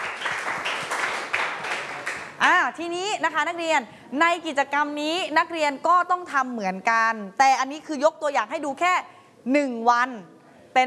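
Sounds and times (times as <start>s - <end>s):
students clapping in a classroom: 0.0s - 2.4s
speech: 2.4s - 10.8s.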